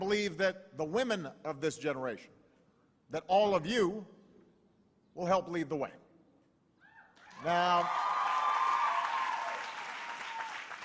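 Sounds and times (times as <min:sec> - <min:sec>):
speech: 0:00.0 - 0:02.4, 0:03.1 - 0:04.2, 0:05.2 - 0:06.0, 0:07.4 - 0:08.1
commencement audience applauding at a women's college: 0:07.2 - 0:10.8.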